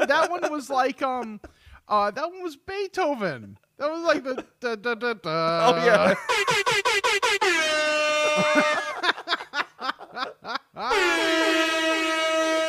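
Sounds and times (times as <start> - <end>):
laughter: 0.0 - 1.4, 5.6 - 7.2, 8.2 - 11.8
speech: 0.1 - 9.3
air horn blasts with added echo effect: 7.0 - 9.0, 10.9 - 12.6.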